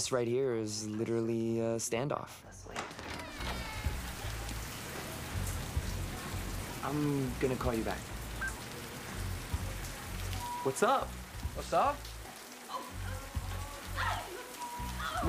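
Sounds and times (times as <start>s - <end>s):
speech: 0.0s - 3.1s, 6.8s - 8.1s, 10.6s - 12.1s
rain falling in a film scene: 2.8s - 15.2s
low rumbling: 3.0s - 8.4s.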